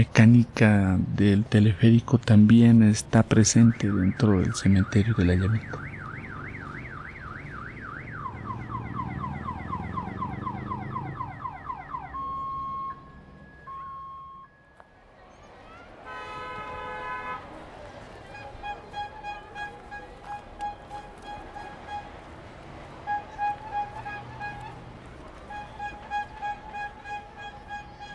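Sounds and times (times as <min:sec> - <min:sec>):
speech: 0:00.0 - 0:05.9
ice cream vendor's warbling siren-like electronic horn outdoors at a cemetery: 0:08.2 - 0:14.7, 0:18.3 - 0:22.2, 0:23.0 - 0:24.8, 0:25.4 - 0:28.1.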